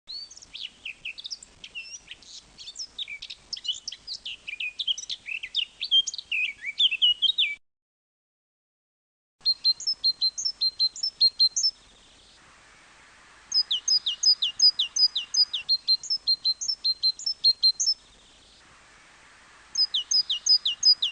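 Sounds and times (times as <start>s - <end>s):
Eurasian blackcap singing: 0.1s - 7.6s, 9.4s - 11.8s, 13.5s - 18.4s, 19.7s - 21.1s.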